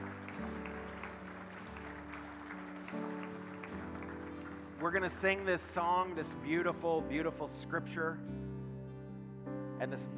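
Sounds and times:
crowd applauding: 0.0 - 6.4
sustained organ chords: 0.0 - 10.1
speech: 4.8 - 8.4, 9.8 - 10.1.

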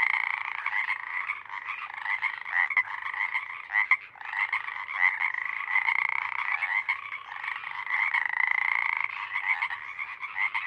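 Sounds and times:
Pacific Chorus Frogs full chorus at night in Sinlahekin Valley: 0.0 - 10.6.

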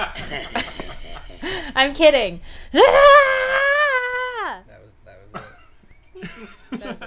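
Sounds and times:
laughter: 0.0 - 7.0
speech: 0.3 - 0.6, 1.8 - 3.5
person's voice imitating a screaming mushroom with a high wail: 2.8 - 4.6.

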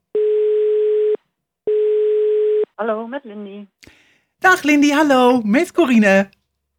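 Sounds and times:
telephone ringing tone of outgoing call: 0.1 - 2.7
speech: 2.8 - 6.4.

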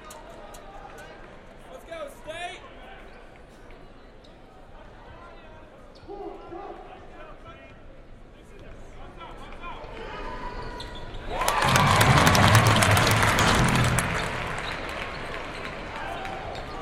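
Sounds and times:
crowd cheering and clapping at an indoor basketball game: 11.3 - 16.8
crowd murmuring at an indoor basketball game in a large echoing hall: 11.6 - 16.0.

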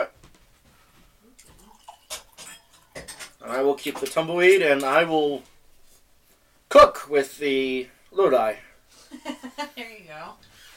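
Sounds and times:
light glass clink: 1.4 - 3.4
wine trickling into a glass: 1.4 - 3.4
speech: 3.5 - 5.5, 6.8 - 10.5.

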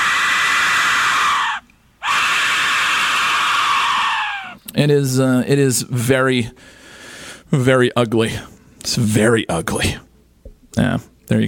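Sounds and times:
woman screaming: 0.0 - 4.6
speech: 4.8 - 6.8, 7.5 - 10.0, 10.8 - 11.4.

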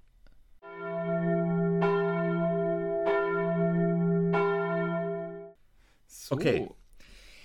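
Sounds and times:
podcast jingle of ringing bell chords: 0.6 - 5.6
speech: 6.3 - 6.8.

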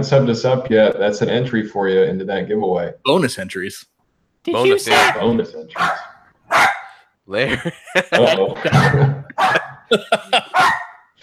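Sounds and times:
speech: 0.0 - 6.6, 7.3 - 10.8
laughter: 4.5 - 6.0, 7.3 - 10.9
dog barking in short sharp yaps: 4.6 - 7.1, 8.6 - 11.1.

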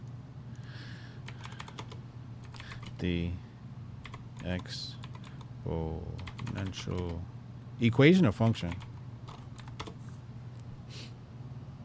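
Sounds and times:
typing on a computer keyboard: 1.2 - 3.0, 4.0 - 5.5, 6.2 - 7.2, 8.4 - 10.0
speech: 3.0 - 3.5, 4.4 - 5.0, 5.6 - 8.9.

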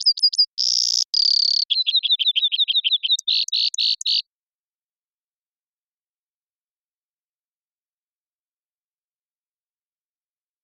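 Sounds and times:
Brewer's sparrow males singing in a subalpine sagebrush meadow: 0.0 - 4.2.

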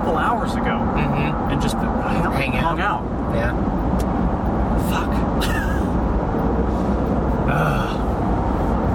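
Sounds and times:
speech: 0.2 - 3.8
bus engine idling: 2.8 - 8.9.

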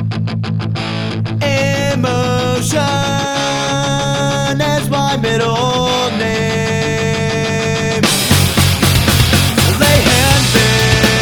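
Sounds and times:
heavily distorted electric guitars in a punk rock song: 0.0 - 11.2
sung vocal line in a punk rock song: 1.4 - 8.2, 9.5 - 11.2
pounding drums in a punk rock song: 8.0 - 11.2.

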